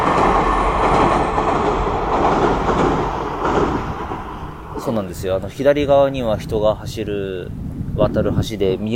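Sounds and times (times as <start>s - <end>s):
rail clatter: 0.0s - 6.8s
train crossing a railway bridge: 0.0s - 8.8s
speech: 4.9s - 8.9s.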